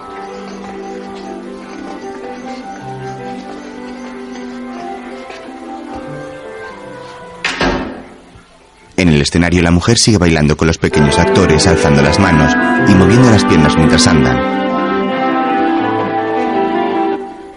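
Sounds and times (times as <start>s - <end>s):
steady tonal background: 0.0s - 9.2s, 10.8s - 17.5s
door slamming shut: 7.4s - 8.4s
thud: 7.5s - 8.3s
speech: 9.0s - 14.6s.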